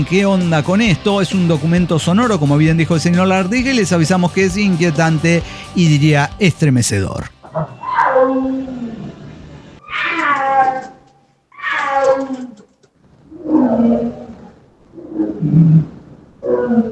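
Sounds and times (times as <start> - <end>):
speech: 0.0 - 8.8
big cat roaring, tiger or jaguar: 7.4 - 16.8.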